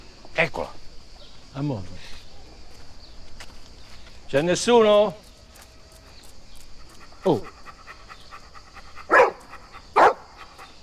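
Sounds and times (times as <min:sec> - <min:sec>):
speech: 0:00.4 - 0:00.8, 0:01.5 - 0:02.2, 0:04.3 - 0:05.2, 0:07.2 - 0:07.6
dog barking: 0:07.2 - 0:10.8.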